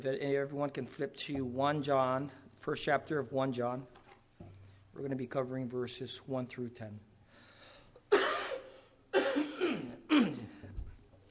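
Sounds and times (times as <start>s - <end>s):
speech: 0.0s - 4.0s, 5.0s - 7.1s
person coughing from something stuck in the throat: 8.1s - 10.7s.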